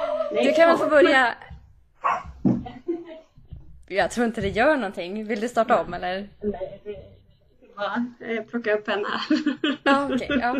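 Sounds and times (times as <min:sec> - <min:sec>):
speech: 0:00.3 - 0:01.4, 0:03.9 - 0:07.0, 0:07.8 - 0:10.5
dogs barking and yipping: 0:02.0 - 0:02.4.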